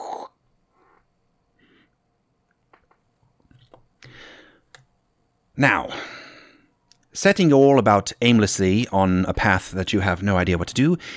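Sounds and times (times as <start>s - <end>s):
loud gulp: 0.0s - 0.4s
person sipping a drink: 0.0s - 1.0s
breaths: 0.0s - 2.0s, 4.0s - 4.8s, 5.9s - 6.7s, 11.0s - 11.1s
speech: 5.6s - 6.1s, 7.2s - 11.1s.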